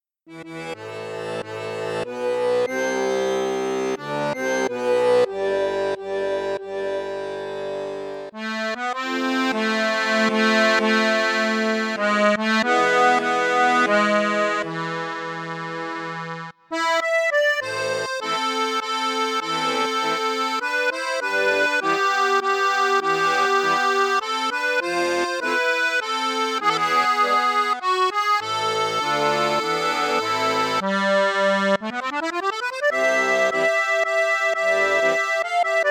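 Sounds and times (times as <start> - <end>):
accordion with flute register: 0.0 - 35.8.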